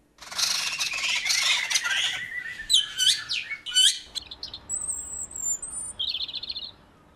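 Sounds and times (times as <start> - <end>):
birds chattering in dawn chorus: 0.2 - 6.8
sweeping bird whistles: 0.4 - 4.1, 4.7 - 6.7.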